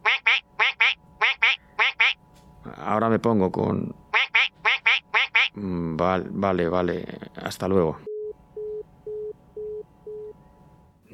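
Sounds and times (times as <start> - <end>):
duck quacking: 0.0 - 2.2, 4.1 - 5.6
speech: 2.9 - 4.0, 5.6 - 8.1.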